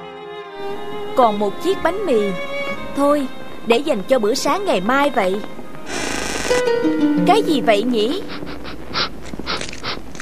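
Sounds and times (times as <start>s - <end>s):
speech: 0.6s - 5.6s, 6.5s - 8.4s
puppy panting in quick breathy bursts: 8.0s - 10.2s.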